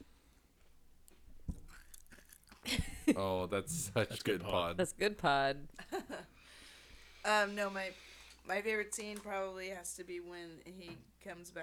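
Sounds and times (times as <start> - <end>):
crunchy chewing of food into the microphone: 1.0 - 2.7
speech: 3.2 - 6.2, 7.2 - 11.6.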